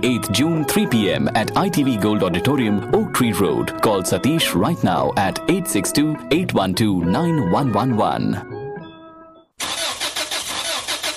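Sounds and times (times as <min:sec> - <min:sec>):
speech: 0:00.0 - 0:08.6
car engine cranking and failing to start: 0:09.6 - 0:11.1.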